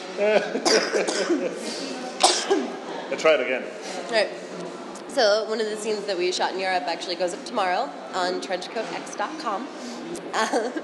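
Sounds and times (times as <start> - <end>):
laughter: 0.0 - 1.9
speech: 0.2 - 10.8
person coughing: 0.6 - 1.6, 2.2 - 2.7.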